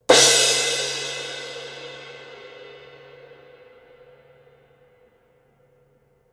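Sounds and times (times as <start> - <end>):
Kerope cymbal: 0.0 - 6.3.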